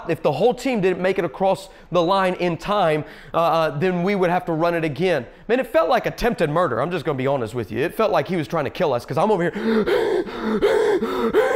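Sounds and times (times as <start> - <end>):
speech: 0.0 - 11.5
voice imitating heavy exhausted breathing after running drills: 9.5 - 11.5.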